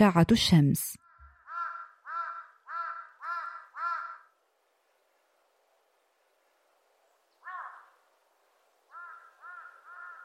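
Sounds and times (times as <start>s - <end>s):
speech: 0.0s - 1.0s
crow cawing: 1.0s - 4.4s, 7.4s - 8.0s, 8.9s - 10.2s.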